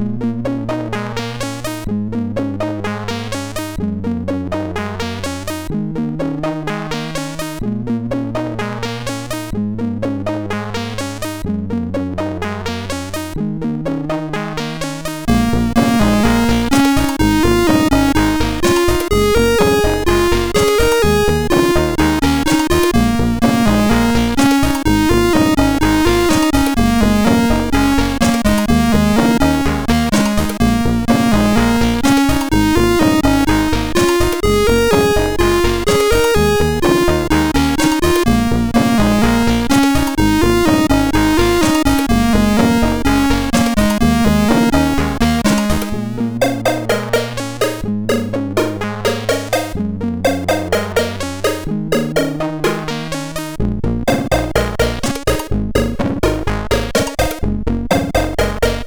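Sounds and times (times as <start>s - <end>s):
SID MOS6581R4 chip music: 0.2s - 11.4s, 12.2s - 58.8s.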